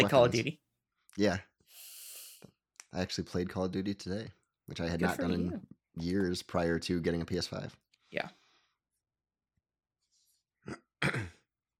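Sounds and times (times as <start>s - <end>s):
speech: 0.0s - 0.6s, 1.2s - 1.5s, 2.9s - 8.4s, 10.6s - 11.4s
person clearing throat into a microphone: 10.7s - 11.5s.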